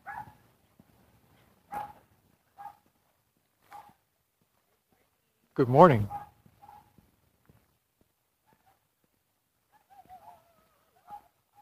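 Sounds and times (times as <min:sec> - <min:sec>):
Scottish terrier barking: 0:00.0 - 0:00.4, 0:01.7 - 0:02.0, 0:02.6 - 0:02.8, 0:03.7 - 0:04.0, 0:06.0 - 0:07.0, 0:08.4 - 0:08.8, 0:09.7 - 0:11.6
quiet outdoor background: 0:00.0 - 0:11.6
speech: 0:05.6 - 0:06.2.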